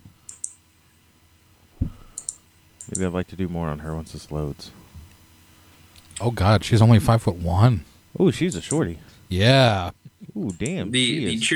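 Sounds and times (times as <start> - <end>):
computer mouse clicks: 0.3 - 0.6, 2.1 - 3.0
low thud: 1.8 - 2.1
speech: 2.9 - 4.8, 6.2 - 11.5.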